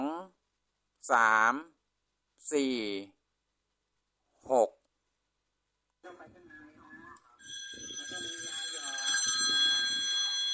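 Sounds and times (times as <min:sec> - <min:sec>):
speech: 0:01.1 - 0:01.8, 0:02.4 - 0:03.2, 0:04.5 - 0:04.8
phone with bright electronic ring: 0:07.4 - 0:10.5.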